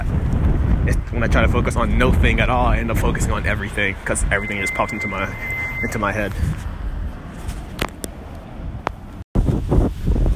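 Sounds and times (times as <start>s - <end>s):
gusty wind buffeting a microphone outdoors: 0.0s - 4.8s, 6.2s - 10.3s
speech: 1.1s - 6.7s.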